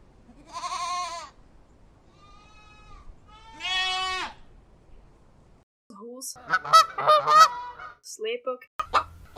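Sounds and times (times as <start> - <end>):
sheep and goats in a livestock herd bleating: 0.3 - 1.4, 2.1 - 4.4, 6.4 - 7.9
speech: 6.2 - 7.5, 8.1 - 8.7.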